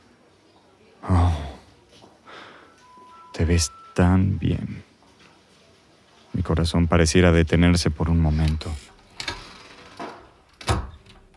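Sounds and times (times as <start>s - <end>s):
speech: 3.4s - 4.9s, 6.4s - 8.9s
low thump of door settling closed: 10.0s - 11.2s.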